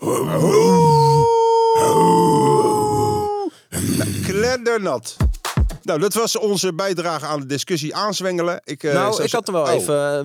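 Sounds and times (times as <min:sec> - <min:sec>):
second voice imitating a long steady wolf howl: 0:00.0 - 0:04.0
person's voice mimicking a deer's low guttural bellow: 0:00.0 - 0:04.6
speech: 0:00.1 - 0:00.6, 0:04.7 - 0:05.3, 0:05.9 - 0:10.2.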